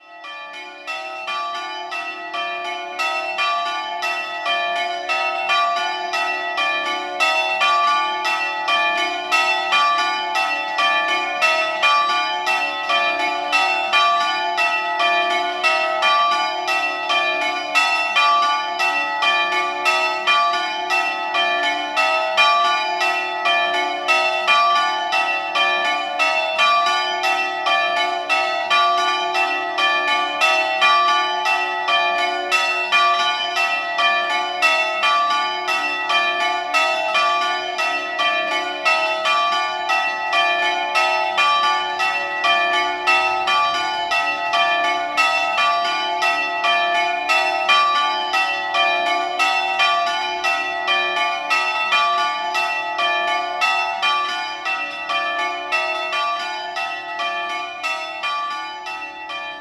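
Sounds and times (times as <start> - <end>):
church bells: 0.0 - 59.5.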